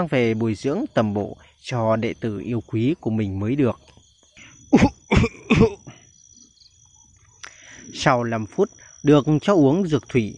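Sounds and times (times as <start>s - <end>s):
speech: 0.0s - 4.0s, 4.7s - 5.0s, 7.9s - 10.3s
man with a painful chest coughing harshly and dryly: 4.8s - 5.9s.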